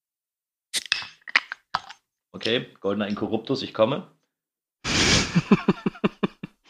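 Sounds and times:
can or bottle of Asahi Super Dry beer being opened: 0:00.8 - 0:02.0
speech: 0:02.3 - 0:04.2, 0:05.4 - 0:05.9
laughter: 0:04.9 - 0:06.5.

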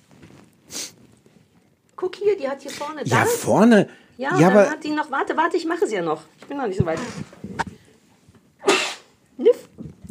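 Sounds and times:
quick intake of breath: 0:00.7 - 0:01.0
speech: 0:02.0 - 0:07.4
person sneezing: 0:08.6 - 0:09.2.

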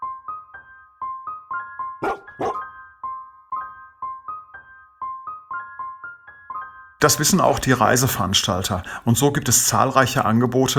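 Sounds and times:
sled huskies barking and yelping: 0:02.0 - 0:02.6
speech: 0:07.0 - 0:10.7.

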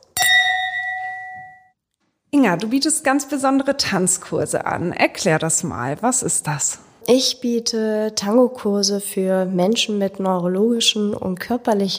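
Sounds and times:
glasses clinking in a toast at a dance school on Kastanienallee: 0:00.0 - 0:01.7
speech: 0:02.4 - 0:11.9.

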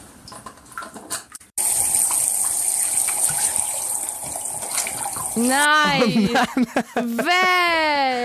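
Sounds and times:
bathwater gushing into glass jam jars: 0:01.6 - 0:05.7
soft splashing: 0:02.1 - 0:05.5
speech: 0:05.4 - 0:08.2
laughter: 0:05.8 - 0:08.2.

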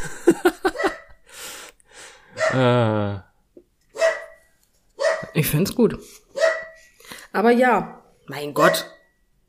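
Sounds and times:
laughter: 0:00.0 - 0:01.0
dog barking: 0:00.7 - 0:01.1, 0:02.4 - 0:02.6, 0:03.9 - 0:04.4, 0:05.0 - 0:05.4, 0:06.4 - 0:06.8, 0:08.6 - 0:09.1
speech: 0:02.5 - 0:03.3, 0:05.4 - 0:06.2, 0:07.4 - 0:09.0.

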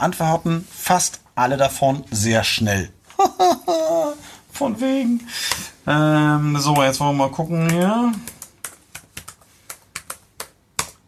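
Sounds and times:
speech: 0:00.0 - 0:03.9, 0:04.6 - 0:08.3
laughter: 0:03.1 - 0:04.2
typing on a computer keyboard: 0:07.6 - 0:11.0.

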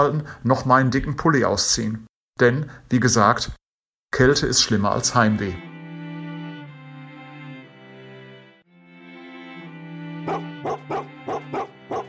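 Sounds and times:
speech: 0:00.0 - 0:05.7
huskies whining in howl-like tones: 0:10.3 - 0:12.0.

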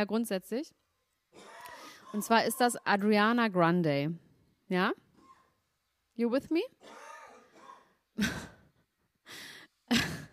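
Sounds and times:
speech: 0:00.0 - 0:01.5, 0:02.1 - 0:05.0, 0:06.2 - 0:07.0, 0:08.2 - 0:08.5, 0:09.9 - 0:10.1
harsh coughs: 0:01.3 - 0:02.3, 0:06.8 - 0:08.7, 0:09.9 - 0:10.3
wheezy gasp for breath: 0:01.6 - 0:02.2, 0:08.3 - 0:10.3.

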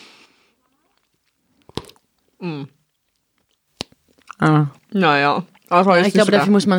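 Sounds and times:
gum chewing: 0:00.6 - 0:05.8
sharp wet mouth smacks: 0:00.8 - 0:02.0, 0:03.4 - 0:04.4
speech: 0:02.4 - 0:02.8, 0:04.4 - 0:06.7.

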